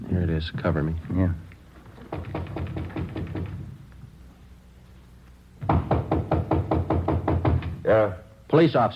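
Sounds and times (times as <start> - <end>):
speech: 0.2 - 1.4, 8.6 - 8.9
heavy pounding on a door: 2.1 - 3.7, 5.6 - 7.8.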